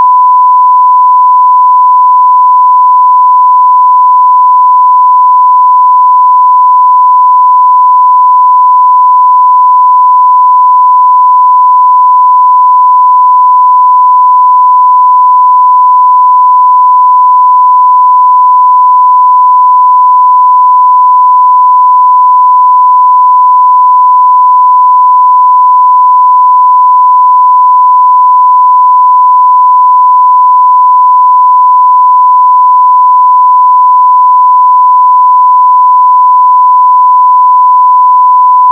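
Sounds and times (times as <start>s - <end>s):
1kHz sine tone at 0dBFS: 0.0s - 38.7s.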